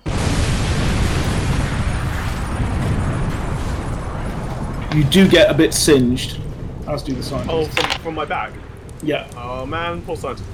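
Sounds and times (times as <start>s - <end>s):
loud rumbling explosion: 0.1s - 5.8s
speech: 5.0s - 10.5s.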